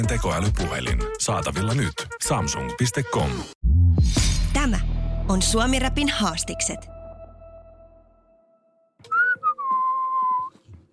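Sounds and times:
speech: 0.0s - 7.0s
person in a booth whistling a melodic phrase: 9.0s - 10.6s.

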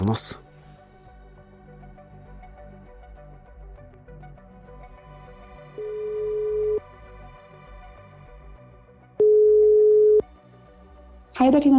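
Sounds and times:
speech: 0.1s - 0.4s, 11.5s - 11.7s
ringback tones of an outgoing phone call to a police lawyer in Norway: 5.8s - 6.8s, 9.2s - 10.2s.

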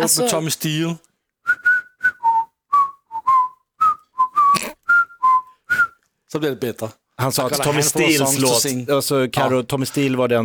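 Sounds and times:
speech: 0.0s - 1.1s, 6.3s - 10.4s
person whistling a lively tune: 1.4s - 6.0s.

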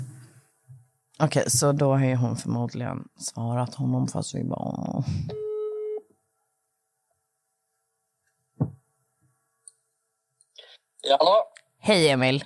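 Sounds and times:
speech: 1.2s - 5.4s, 11.1s - 12.4s
electronic ringing tone of an outgoing phone call: 5.3s - 6.0s
dull thump: 8.6s - 8.8s.

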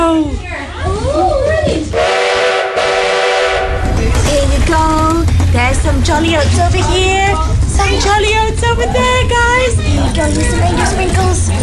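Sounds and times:
busy noise: 0.0s - 11.6s
train horn as train departs: 2.0s - 4.1s
speech: 6.2s - 11.6s.

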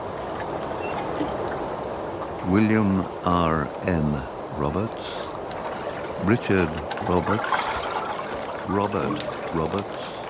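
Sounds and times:
water rushing and trickling on a river: 0.0s - 10.2s
speech: 2.5s - 5.2s, 6.2s - 7.7s, 8.7s - 10.0s.

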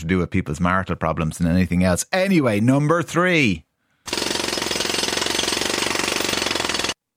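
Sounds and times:
speech: 0.0s - 4.2s
jackhammer pounding: 4.1s - 7.0s.

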